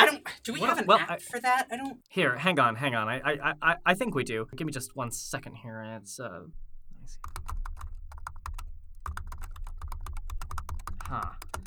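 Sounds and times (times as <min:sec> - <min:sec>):
speech: 0:00.4 - 0:07.6, 0:11.1 - 0:11.4
rapid typing on a computer keyboard while scanning a QR code: 0:07.2 - 0:11.6.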